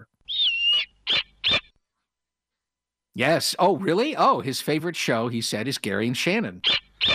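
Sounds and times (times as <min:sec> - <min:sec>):
snowy owl giving high shrill calls: 0:00.3 - 0:01.7, 0:06.6 - 0:07.1
speech: 0:03.2 - 0:06.8.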